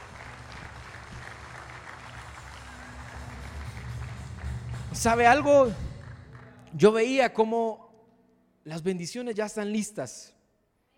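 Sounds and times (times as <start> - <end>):
audience applauding: 0.0 - 6.8
speech: 5.0 - 5.8, 6.8 - 7.8, 8.7 - 10.4.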